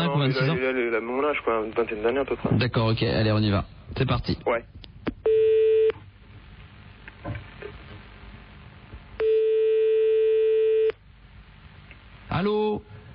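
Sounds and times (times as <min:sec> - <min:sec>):
speech: 0:00.0 - 0:05.4
two steady electronic telephone line tones: 0:05.2 - 0:06.0, 0:09.2 - 0:11.0.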